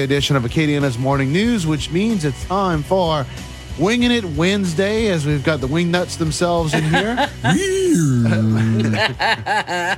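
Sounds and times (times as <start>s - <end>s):
speech: 0.0s - 9.9s
laughter: 6.6s - 9.9s
man imitating a donkey bray: 7.3s - 8.9s.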